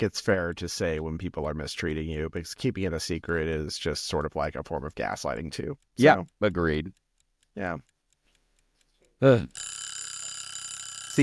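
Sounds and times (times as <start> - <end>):
speech: 0.0 - 7.0, 7.6 - 7.9, 9.2 - 9.7
timer buzzer ringing: 9.5 - 11.2.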